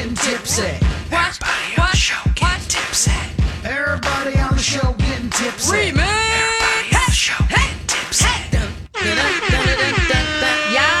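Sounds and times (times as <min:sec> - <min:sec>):
thumping bass hits: 0:00.0 - 0:01.3, 0:02.4 - 0:08.9, 0:09.5 - 0:10.4
speech: 0:00.4 - 0:01.4, 0:03.0 - 0:06.4
air horn blasts: 0:08.9 - 0:10.9.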